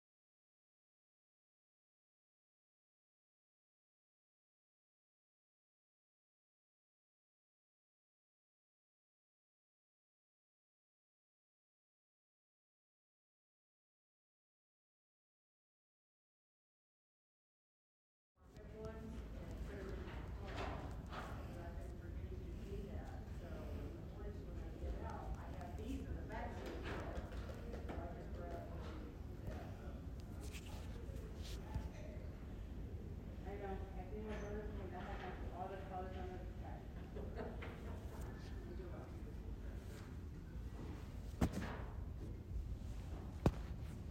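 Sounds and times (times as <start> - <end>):
science center first floor public area ambience: 18.5 - 44.1.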